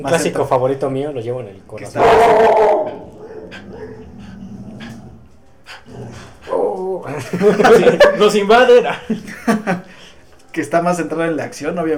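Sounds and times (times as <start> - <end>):
speech: 0.0 - 3.8, 7.1 - 9.8, 10.6 - 11.9
electric dog yelping and whimpering: 2.0 - 4.3
laughter: 7.0 - 10.1.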